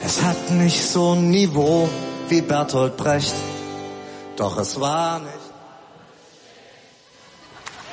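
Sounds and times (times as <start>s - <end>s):
speech: 0.1s - 3.5s, 4.4s - 5.4s
live concert audience singing along: 5.6s - 7.5s.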